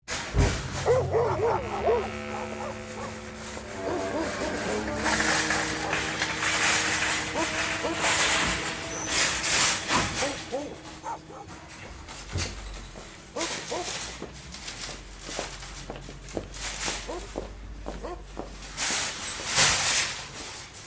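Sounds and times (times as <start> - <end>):
footsteps: 0.1 - 20.6
tied-up dogs barking outside a supermarket: 0.8 - 11.8, 13.2 - 14.2, 17.0 - 18.4
indistinct voices: 0.8 - 14.0.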